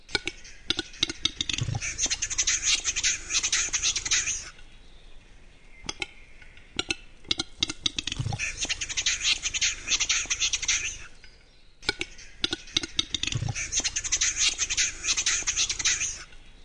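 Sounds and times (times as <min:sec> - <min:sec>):
Western capercaillie Tetrao urogallus song with clicks, pop and grind: 0:00.0 - 0:16.6.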